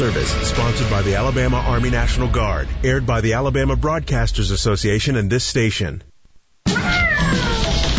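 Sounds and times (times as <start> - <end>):
speech: 0.0 - 6.1
outdoor cat meowing plaintively to come inside: 6.7 - 7.8.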